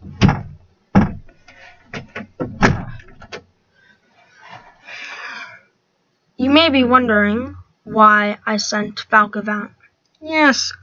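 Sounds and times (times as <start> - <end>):
door thumping shut: 0.0 - 1.3, 2.0 - 3.4
soft rustling scrape: 4.2 - 4.9
speech: 6.5 - 10.8.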